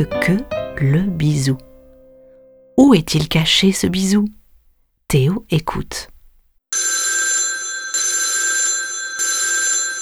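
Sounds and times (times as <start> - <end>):
speech: 0.0 - 1.7, 2.8 - 4.4, 5.1 - 6.1
telephone bell ringing with a metallic trill: 6.8 - 9.9.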